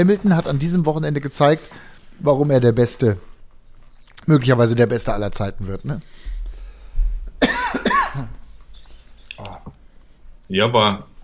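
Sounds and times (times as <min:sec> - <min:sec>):
speech: 0:00.0 - 0:03.3, 0:04.2 - 0:06.4, 0:08.2 - 0:08.4, 0:10.5 - 0:11.1
person coughing harshly: 0:07.4 - 0:08.4.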